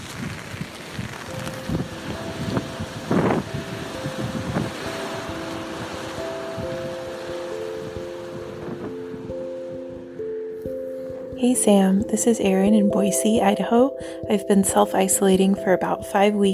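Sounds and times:
faint rain patter outdoors: 0:00.0 - 0:09.0
wind outdoors during a walk around a block: 0:00.0 - 0:13.6
speech: 0:11.4 - 0:16.5.

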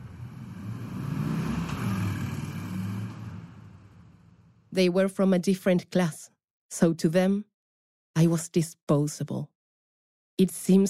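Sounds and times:
car engine rumbling as the car pulls away: 0:00.0 - 0:04.7
speech: 0:04.7 - 0:07.5, 0:08.2 - 0:09.5, 0:10.4 - 0:10.8.

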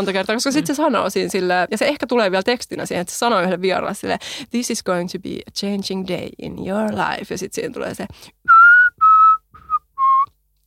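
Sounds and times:
speech: 0:00.0 - 0:08.4
person whistling a TV show theme tune: 0:08.5 - 0:10.3.

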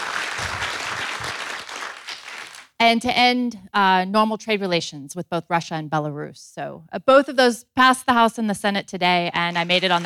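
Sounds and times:
audience applause from a small crowd: 0:00.0 - 0:02.7, 0:09.8 - 0:10.0
speech: 0:02.8 - 0:10.0.

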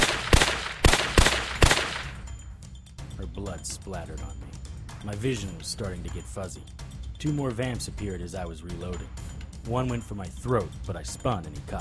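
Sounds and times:
pistol gunshots: 0:00.0 - 0:02.2
speech: 0:03.3 - 0:11.7.

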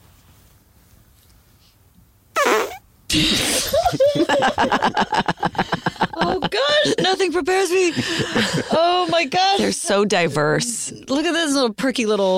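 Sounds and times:
short perky fart: 0:02.3 - 0:03.7
people laughing: 0:03.1 - 0:09.8
speech: 0:04.3 - 0:05.6, 0:06.5 - 0:12.3
lively vocal sounds: 0:05.6 - 0:12.3.

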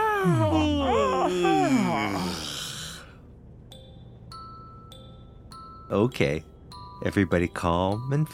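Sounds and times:
several people yawning aloud together: 0:00.0 - 0:03.1
speech: 0:00.2 - 0:02.6, 0:05.9 - 0:08.3.

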